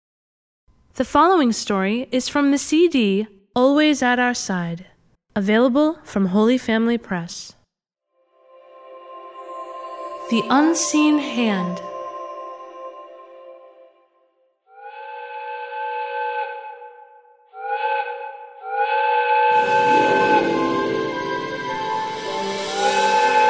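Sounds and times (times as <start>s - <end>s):
speech: 1.0s - 7.6s, 10.3s - 11.9s
steam train whistle chord-like blasts: 14.7s - 23.4s.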